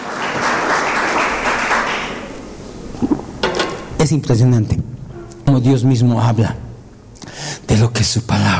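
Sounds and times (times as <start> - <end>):
audience applauding: 0.0 - 2.3
speech: 4.0 - 6.6, 7.7 - 8.5.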